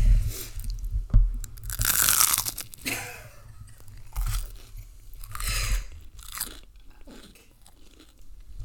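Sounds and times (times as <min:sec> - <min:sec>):
low rumbling handling noise: 0:00.0 - 0:06.2
crunchy food being chewed: 0:01.6 - 0:03.0, 0:03.8 - 0:08.6.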